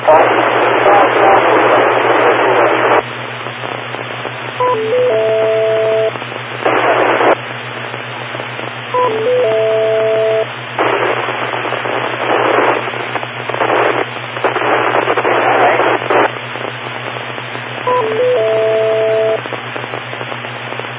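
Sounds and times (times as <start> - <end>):
radio receiver static crackling: 0.0 - 20.9
brief pure tones: 4.6 - 6.1, 17.9 - 19.4.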